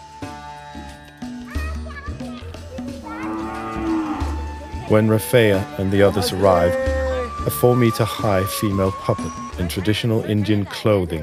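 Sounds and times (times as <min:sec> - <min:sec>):
cows mooing: 0:03.0 - 0:04.6, 0:06.1 - 0:07.5
speech: 0:04.9 - 0:11.2.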